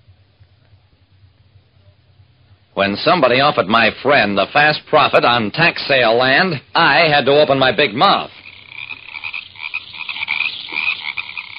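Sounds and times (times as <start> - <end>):
speech: 2.8 - 8.4
dense chorus of frogs croaking in a swamp: 6.4 - 11.5.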